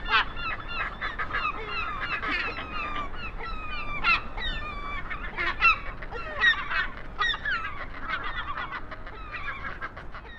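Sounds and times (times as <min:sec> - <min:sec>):
Northern fulmar calls, nasal wavering honking notes: 0:00.0 - 0:10.3.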